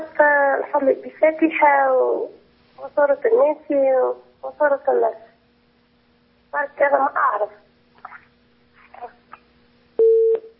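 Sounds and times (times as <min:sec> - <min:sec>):
speech: 0:00.7 - 0:05.2, 0:06.5 - 0:07.6
faint garbled voice fragments: 0:08.0 - 0:09.4
telephone line tone after a call cuts off: 0:10.0 - 0:10.5.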